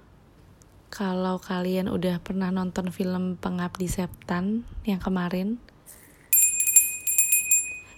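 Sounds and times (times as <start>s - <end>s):
speech: 1.0s - 5.7s
hand bell ringing: 6.0s - 7.9s.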